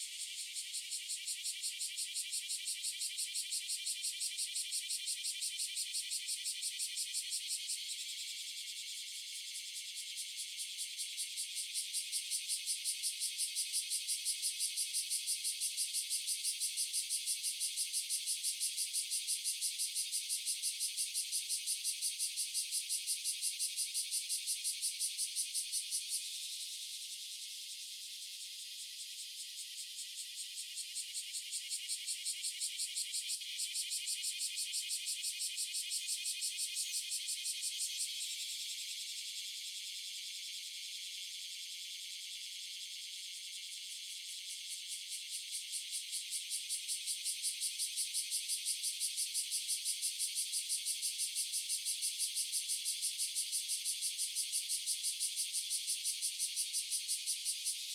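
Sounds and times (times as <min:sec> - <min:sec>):
cicadas: 0:00.0 - 0:57.9.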